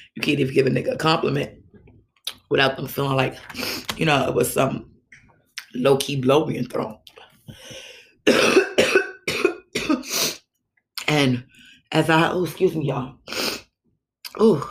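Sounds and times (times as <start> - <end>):
speech: 0.1 - 1.6, 2.5 - 4.9, 5.7 - 8.6, 11.1 - 13.4, 14.4 - 14.6
harsh raspy coughing bursts: 8.3 - 10.3.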